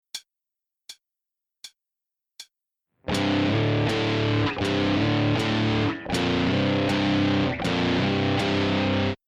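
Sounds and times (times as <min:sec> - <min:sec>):
electric guitar power chord: 0:03.1 - 0:09.2.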